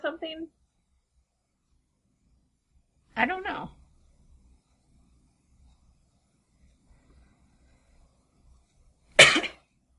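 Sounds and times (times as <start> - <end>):
speech: 0.2 - 0.6, 3.2 - 3.8
short harsh cough: 9.2 - 9.6.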